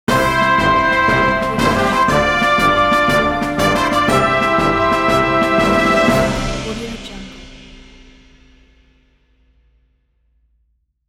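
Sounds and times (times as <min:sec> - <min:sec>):
big brass fanfare for a game: 0:00.1 - 0:07.7.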